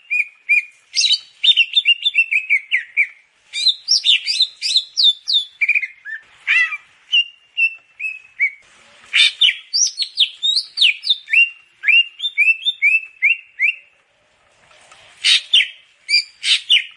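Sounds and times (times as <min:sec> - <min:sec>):
Grey-cheeked bulbul singing chirps and whistles: 0:00.0 - 0:08.6, 0:09.2 - 0:13.9.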